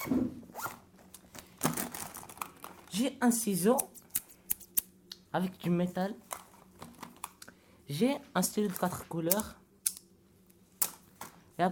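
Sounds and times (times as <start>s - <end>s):
pencil case zipper being pulled open: 0.0s - 0.8s
speech: 3.0s - 4.0s, 5.3s - 6.3s, 7.9s - 9.6s, 11.6s - 11.7s.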